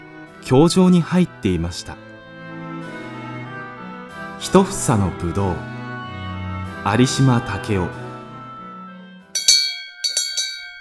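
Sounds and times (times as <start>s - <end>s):
speech: 0.4s - 2.0s, 4.4s - 5.7s, 6.8s - 8.0s
school bell ringing: 9.4s - 10.7s.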